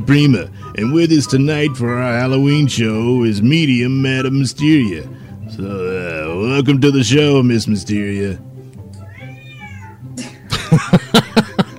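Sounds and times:
speech: 0.0s - 8.5s
cat meowing: 9.0s - 10.0s
laughter: 10.2s - 11.7s.

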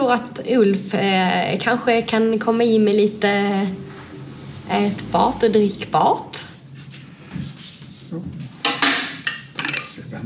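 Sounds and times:
speech: 0.1s - 3.8s, 4.7s - 6.5s, 8.1s - 8.4s
glass, bottle and opener set down on a hard surface: 8.6s - 10.0s.

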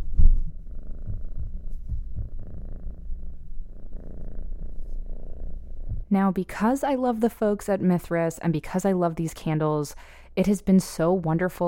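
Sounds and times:
domestic cat purring: 0.0s - 6.1s
speech: 6.1s - 11.6s.

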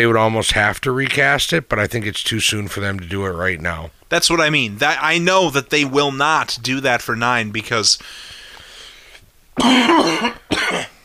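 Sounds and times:
speech: 0.0s - 8.4s, 9.6s - 10.9s
person coughing: 9.6s - 11.0s.

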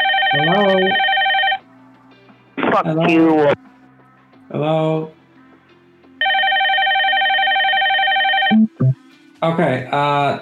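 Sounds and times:
electronic telephone ring with a sustained warbling tone: 0.0s - 1.6s, 6.2s - 9.0s
speech: 0.3s - 1.1s, 2.8s - 3.7s, 4.5s - 5.2s, 8.8s - 10.3s.

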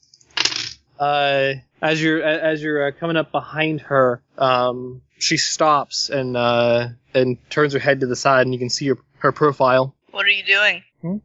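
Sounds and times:
dice rolled across a hard tabletop for a sneaking check: 0.2s - 0.8s
brief sustained voiced tone: 1.0s - 10.3s
speech: 1.0s - 11.2s.

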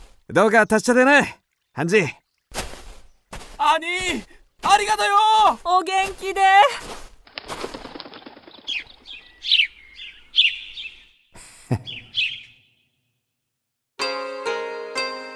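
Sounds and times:
speech: 0.3s - 2.2s, 3.7s - 7.0s
wings fluttering: 6.0s - 11.0s
sparrows chirping: 8.4s - 13.0s
sustained musical tone: 14.0s - 15.3s.

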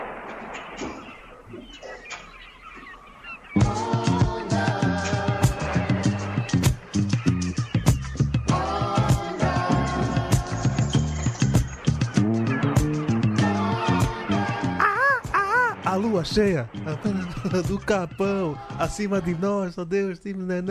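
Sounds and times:
melodic singing voice: 3.5s - 6.6s, 8.5s - 10.9s, 13.2s - 15.9s, 18.2s - 19.7s
Brazilian soul music track with full band: 3.5s - 15.9s
laughter: 14.8s - 15.9s
speech: 16.3s - 20.6s.

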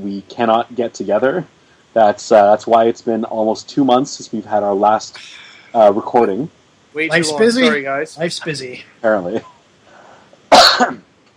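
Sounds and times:
speech: 0.0s - 9.5s
person coughing: 10.5s - 11.0s.

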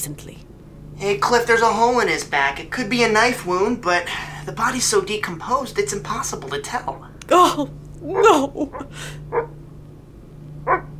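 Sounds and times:
speech: 0.0s - 9.5s
steady low electrical hum: 0.0s - 10.9s
dog barking: 8.1s - 9.6s, 10.6s - 10.9s.

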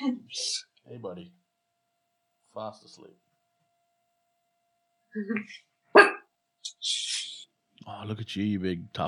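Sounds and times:
speech: 0.0s - 1.4s, 2.6s - 3.3s, 5.2s - 6.1s, 7.8s - 9.0s
dog barking: 6.0s - 6.3s.

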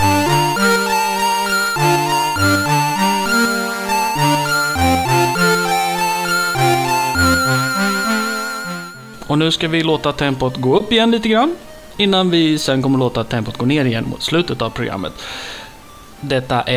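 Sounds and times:
video game music with synthesized melody and pulsing bass: 0.0s - 11.5s
speech: 9.4s - 15.6s, 16.2s - 16.7s.

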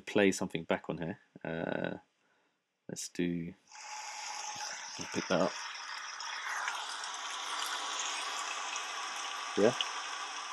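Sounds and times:
speech: 0.1s - 2.1s, 2.9s - 3.9s, 5.0s - 5.6s, 9.6s - 9.9s
recorded rain playing from a sound machine: 4.3s - 10.5s.

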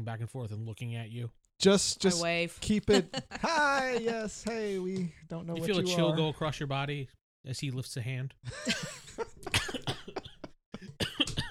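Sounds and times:
speech: 0.0s - 9.0s
laughter: 2.7s - 6.1s, 8.5s - 10.5s
harsh fit of coughing: 9.5s - 11.4s.

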